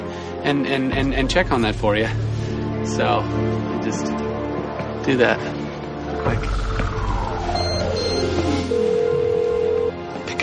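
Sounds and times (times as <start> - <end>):
speech: 0.4 - 4.3, 5.0 - 7.0
telephone ringing with a steady electronic tone: 7.6 - 10.0.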